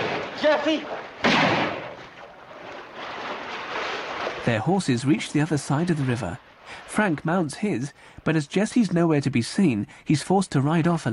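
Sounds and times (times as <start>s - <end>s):
gunfire from a posse shooting at riders crossing a river on horseback: 0.0s - 4.4s
speech: 0.4s - 1.1s, 4.4s - 11.1s.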